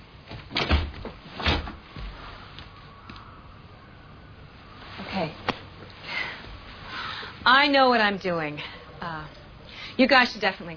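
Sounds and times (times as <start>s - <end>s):
door pushed shut: 0.3s - 1.8s
speech: 7.6s - 9.4s, 10.0s - 10.7s.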